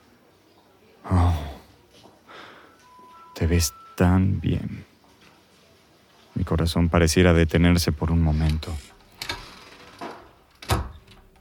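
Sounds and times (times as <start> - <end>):
speech: 3.4 - 4.9, 6.5 - 8.9
door being closed carefully: 9.2 - 11.4
low thud of door latch settling: 10.0 - 11.4.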